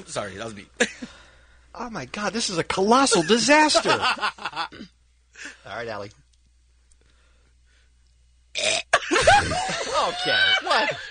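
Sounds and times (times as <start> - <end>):
speech: 0.0 - 1.2, 1.8 - 6.2, 8.6 - 8.8, 9.4 - 11.1
laughter: 3.1 - 4.7, 9.0 - 11.1
person forcing a burp: 4.7 - 5.0, 8.5 - 9.6.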